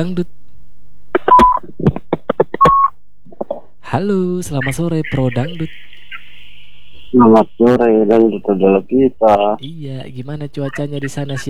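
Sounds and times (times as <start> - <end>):
speech: 0.0 - 0.4, 3.9 - 5.9, 7.1 - 11.4
telephone keypad dialing beeps as a call is placed: 2.6 - 2.9.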